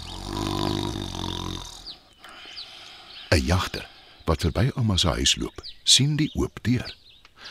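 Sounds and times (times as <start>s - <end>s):
sleeping wolf snoring loudly: 0.0s - 2.0s
speech: 3.4s - 7.4s.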